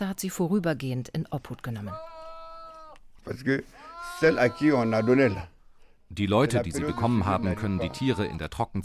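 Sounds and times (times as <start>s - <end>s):
speech: 0.0s - 2.1s, 3.2s - 8.8s
sheep bleating in an enclosure: 1.9s - 3.0s, 3.8s - 5.5s, 6.5s - 8.5s.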